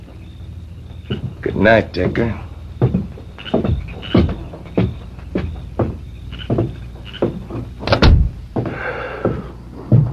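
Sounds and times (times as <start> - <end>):
softer rustling movement: 0.0 - 8.7
wooden knocks and bumps: 0.9 - 10.1
speech: 1.4 - 2.5
door shutting with a loud solid thud: 7.8 - 8.4.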